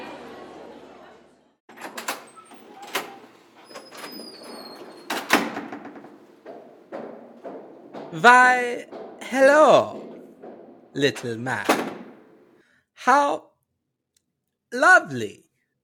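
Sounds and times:
door knocks, thuds and squeak as unlatched and swung open: 1.7 - 12.6
metal chains rattling as removed from a door: 1.7 - 12.6
speech: 8.1 - 10.0, 10.9 - 11.9, 13.0 - 13.5, 14.7 - 15.4.

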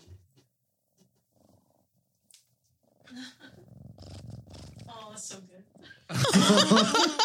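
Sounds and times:
cat purring loudly against the microphone: 1.3 - 2.0, 2.8 - 5.8
laughter: 6.1 - 7.2.

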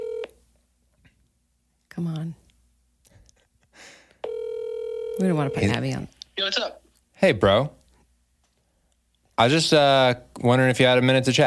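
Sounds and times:
outgoing call ringback tone over a speakerphone: 0.0 - 0.4, 4.2 - 5.8
speech: 2.0 - 2.4, 5.2 - 7.8, 9.4 - 11.4.

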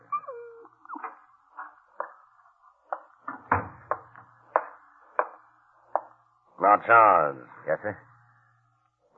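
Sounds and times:
dog whining in an apartment: 0.0 - 1.3
speech: 6.6 - 8.1.

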